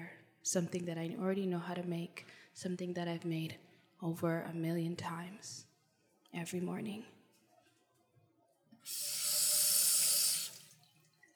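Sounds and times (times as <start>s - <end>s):
speech: 0.4s - 5.7s, 6.3s - 7.2s, 8.8s - 9.3s
kitchen tap water running into a sink while washing salad: 8.9s - 11.1s.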